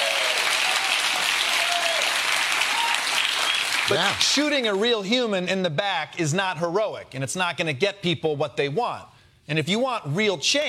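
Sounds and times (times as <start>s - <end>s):
faint whistles and cheers from an audience: 0.0s - 3.9s
large audience applauding: 0.0s - 4.5s
speech: 3.9s - 10.6s.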